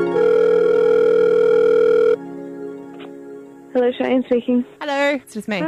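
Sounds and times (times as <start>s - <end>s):
phone calling tone: 0.1s - 2.2s
speech: 3.9s - 5.6s.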